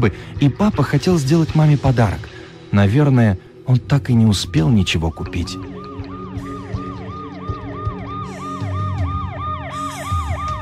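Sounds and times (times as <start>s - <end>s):
speech: 0.0s - 5.7s
emergency vehicle siren wailing: 3.7s - 10.5s.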